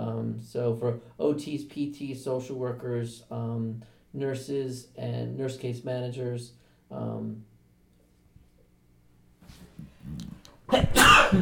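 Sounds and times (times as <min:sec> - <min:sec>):
speech: 0:00.4 - 0:07.5, 0:09.5 - 0:11.4
person sneezing: 0:09.5 - 0:11.4.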